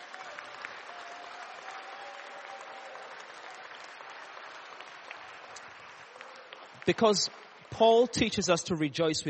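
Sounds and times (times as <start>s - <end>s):
applause from a sizable crowd: 0.0s - 8.4s
speech: 6.9s - 9.2s.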